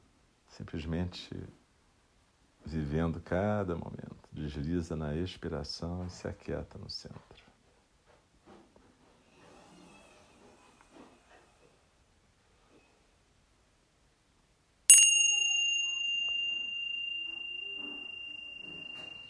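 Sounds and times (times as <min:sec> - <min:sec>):
speech: 0:00.6 - 0:01.6, 0:02.6 - 0:07.5
meditation bell ringing: 0:14.9 - 0:19.2.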